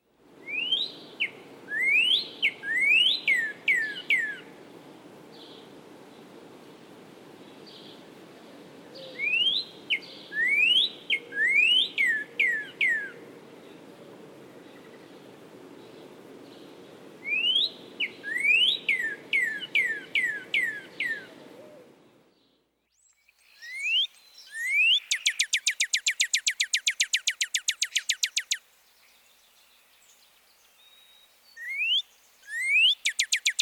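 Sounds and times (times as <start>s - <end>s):
cardinal singing upslurred wheat whistles: 0.5s - 4.4s, 9.1s - 13.2s, 17.2s - 21.3s, 23.0s - 28.6s, 30.8s - 33.6s.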